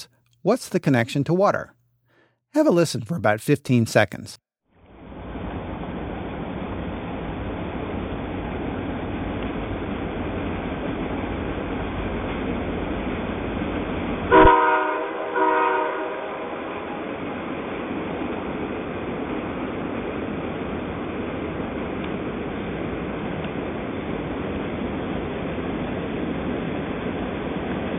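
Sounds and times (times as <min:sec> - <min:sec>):
speech: 0:00.0 - 0:01.8, 0:02.5 - 0:04.4
train wheels rumbling on track recorded from the Potomac River: 0:05.3 - 0:27.9
train warning horn blasts recorded from the Potomac River: 0:14.3 - 0:17.0.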